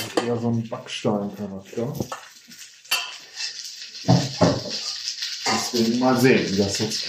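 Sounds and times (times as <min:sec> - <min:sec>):
constant sizzling hiss in a frying pan: 0:00.0 - 0:07.0
speech: 0:00.2 - 0:02.6, 0:04.0 - 0:04.9, 0:05.7 - 0:07.0
utensil scraping a frying pan while breaking up dough: 0:01.4 - 0:07.0.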